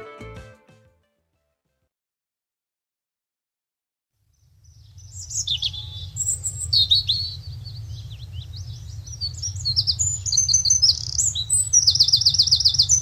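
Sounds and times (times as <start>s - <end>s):
several birds chirping and singing: 4.7s - 13.0s.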